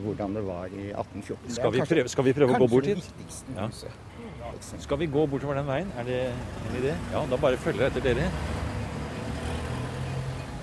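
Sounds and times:
speech: 0.0s - 8.6s
traffic on a busy city street: 0.0s - 10.6s.

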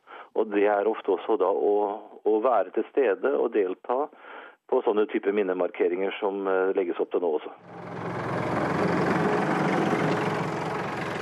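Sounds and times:
speech: 0.4s - 8.1s
tractor engine running on Utøya in Norway: 7.6s - 11.1s.

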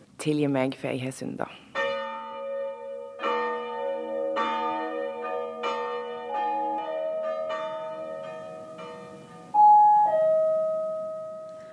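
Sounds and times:
speech: 0.2s - 1.7s
parliament bells ringing to call a vote: 1.8s - 11.7s.

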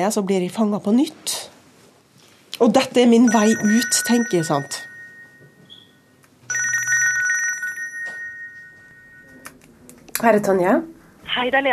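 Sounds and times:
speech: 0.0s - 1.5s, 2.6s - 4.9s, 10.2s - 11.7s
telephone ringing with a bright electronic tone: 3.2s - 9.6s.

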